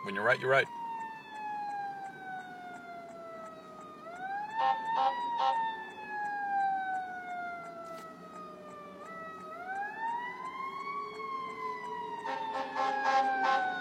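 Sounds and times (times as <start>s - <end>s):
fire truck siren passing outside an office: 0.0s - 13.7s
fire truck blaring horn blasts: 4.6s - 5.6s, 12.2s - 13.7s.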